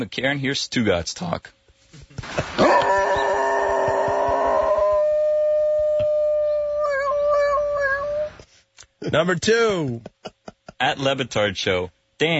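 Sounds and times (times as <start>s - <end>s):
speech: 0.0s - 1.6s, 9.1s - 12.3s
dog howling like a siren: 2.6s - 8.4s.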